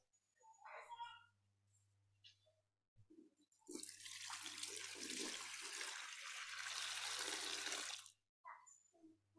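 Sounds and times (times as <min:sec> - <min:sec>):
speech: 0:00.4 - 0:01.3
water being poured out: 0:03.7 - 0:08.1.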